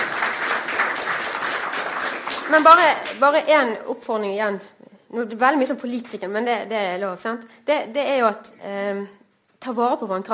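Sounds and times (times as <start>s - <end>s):
audience applause: 0.0s - 3.2s
speech: 2.5s - 10.3s.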